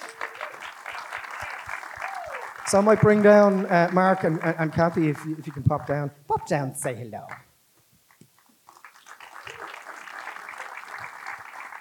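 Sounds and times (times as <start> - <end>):
audience applause: 0.0 - 5.8, 8.7 - 11.7
speech: 2.7 - 7.4.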